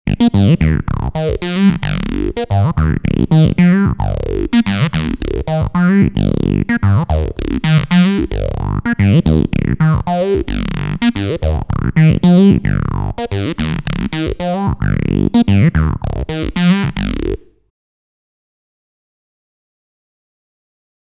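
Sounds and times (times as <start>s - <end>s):
wet funk synth: 0.1s - 17.5s.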